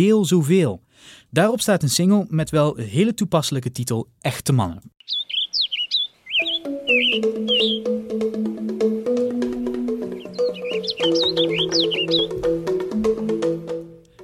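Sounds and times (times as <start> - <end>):
speech: 0.0 - 5.3, 7.1 - 9.0
birds chirping: 5.0 - 13.6.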